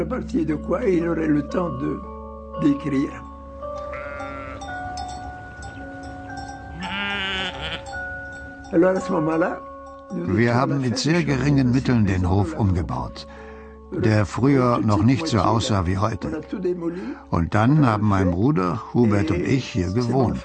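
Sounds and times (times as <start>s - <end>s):
speech: 0.0s - 3.3s, 8.7s - 20.4s
sheep bleating on a farm: 3.9s - 4.7s, 6.7s - 8.0s.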